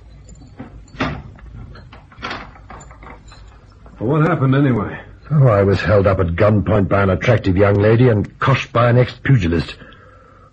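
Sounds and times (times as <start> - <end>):
low room hum: 0.0 - 10.5
door pushed shut: 0.3 - 4.4
door locked from the inside: 0.4 - 3.7
speech: 4.0 - 9.9.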